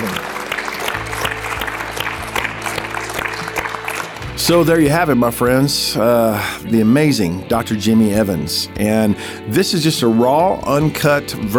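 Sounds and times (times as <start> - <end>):
group of people applauding: 0.0 - 5.2
speech: 4.4 - 11.5.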